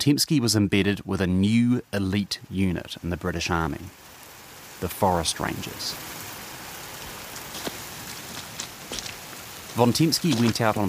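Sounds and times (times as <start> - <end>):
speech: 0.0 - 4.1, 4.8 - 6.1, 9.8 - 10.8
heavy driving rain: 0.0 - 10.8.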